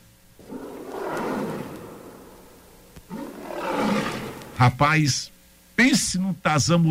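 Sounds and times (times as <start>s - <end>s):
lion roaring: 0.4s - 4.8s
speech: 4.6s - 6.9s.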